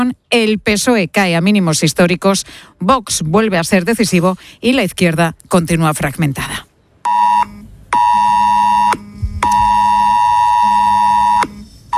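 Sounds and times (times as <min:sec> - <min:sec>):
speech: 0:00.0 - 0:06.7
mobile phone emergency alert tone: 0:07.1 - 0:11.9.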